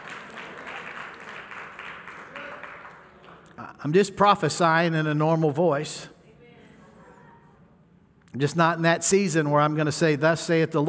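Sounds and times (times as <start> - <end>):
audience clapping: 0.0 - 3.7
speech: 3.8 - 6.1, 8.4 - 10.8.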